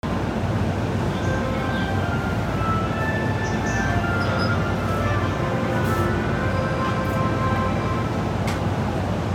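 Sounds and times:
train sounds: 0:00.0 - 0:09.3.

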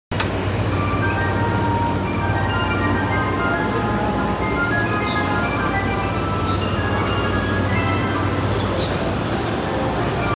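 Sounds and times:
train running clockwise: 0:00.1 - 0:10.3.

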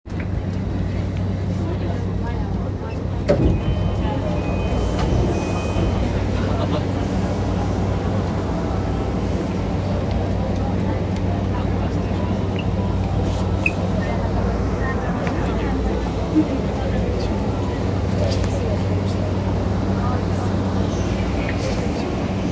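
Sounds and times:
JR Yamanote Line train at Mejiro, counterclockwise: 0:00.0 - 0:22.5.

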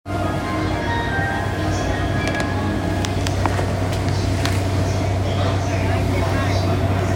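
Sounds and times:
train sounds on a clockwise city railway loop line: 0:00.1 - 0:07.1.

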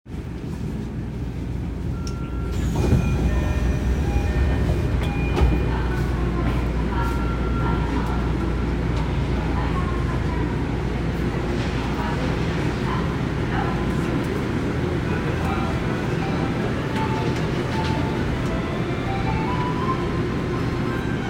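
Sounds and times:
train sounds at Ichigaya station on the Namboku Line: 0:00.2 - 0:21.2.

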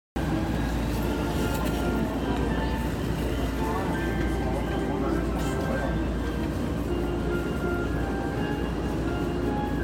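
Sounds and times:
train on the Tokaido Line south of Kawasaki: 0:00.2 - 0:09.8.

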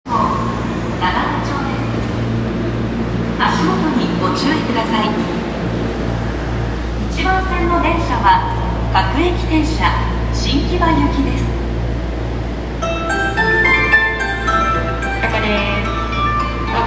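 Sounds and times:
train on the Yurakucho Line at Nagatacho east: 0:00.0 - 0:16.8.

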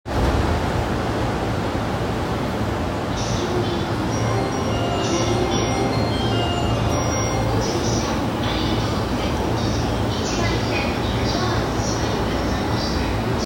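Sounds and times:
JR Chuo-Sobu Line train sounds at Nishi-Ogikubo: 0:00.1 - 0:13.4.

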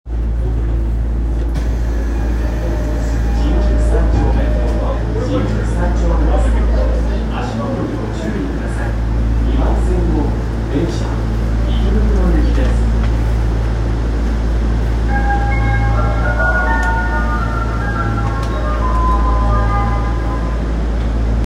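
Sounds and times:
subway train sounds at Shinjuku-sanchome station: 0:00.1 - 0:21.4.

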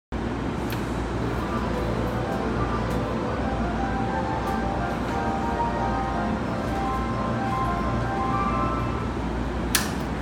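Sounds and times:
train sounds on the Keihin-Tohoku Line: 0:00.2 - 0:10.2.

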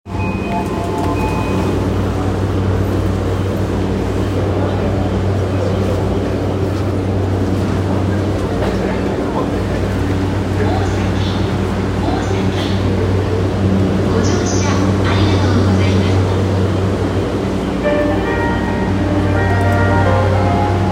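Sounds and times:
JR Yamanote Line train at Osaki running counterclockwise: 0:00.1 - 0:20.9.

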